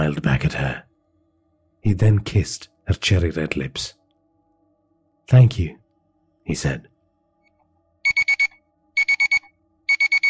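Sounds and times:
speech: 0.0 - 0.9, 1.8 - 4.0, 5.3 - 5.8, 6.4 - 6.9
alarm clock beeping in sharp high-pitched tones: 7.4 - 10.2.

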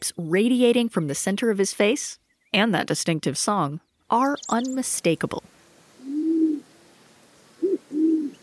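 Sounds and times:
speech: 0.0 - 5.6
Band-tailed Pigeon cooing: 6.0 - 6.7, 7.6 - 8.4.

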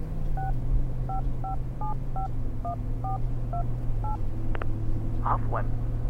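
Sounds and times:
low hum: 0.0 - 6.0
phone keypad tones from dialing a phone: 0.4 - 2.3
speech: 1.2 - 6.0.

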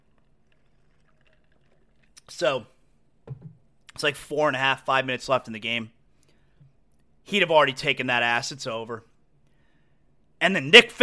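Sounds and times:
person sipping a bottled drink with wet slurps: 0.0 - 2.3
speech: 2.4 - 2.8, 4.0 - 6.0, 7.3 - 9.1, 10.4 - 11.0.

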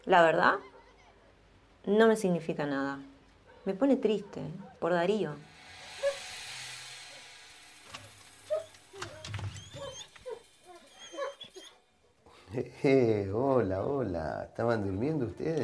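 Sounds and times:
speech: 0.0 - 0.7, 1.8 - 5.5, 12.5 - 15.6
dogs whimpering and yipping: 8.4 - 11.9.

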